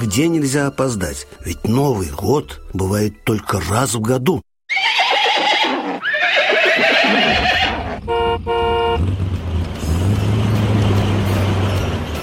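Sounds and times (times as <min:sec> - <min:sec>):
speech: 0:00.1 - 0:04.5
horses of a troika neighing: 0:04.7 - 0:08.0
horn honking: 0:07.6 - 0:09.2
low rumble of a truck engine: 0:07.8 - 0:12.2.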